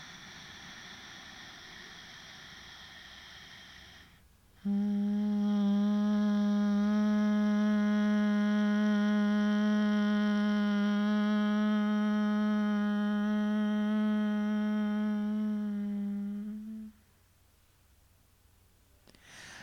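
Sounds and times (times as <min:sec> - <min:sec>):
soft breathy noise: 0:00.0 - 0:04.9, 0:19.1 - 0:19.6
closed-mouth humming of an M sound: 0:00.0 - 0:17.0.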